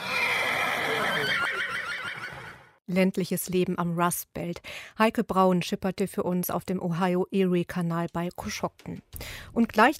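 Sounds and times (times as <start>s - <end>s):
horses neighing and whinnying: 0.0s - 2.7s
speech: 2.9s - 9.9s.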